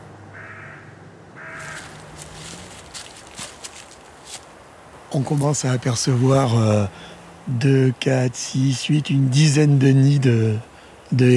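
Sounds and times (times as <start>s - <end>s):
steady outdoor noise: 0.0s - 11.3s
carrion crow cawing near a heronry: 0.3s - 4.6s, 6.9s - 7.4s
rustling: 1.4s - 7.2s
footsteps: 1.6s - 5.6s
speech: 5.1s - 11.3s.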